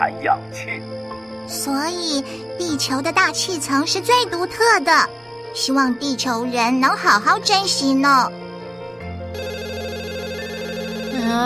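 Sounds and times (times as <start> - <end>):
speech: 0.2 - 8.4, 11.2 - 11.4
telephone ringing with a warbling electronic trill: 9.3 - 11.4.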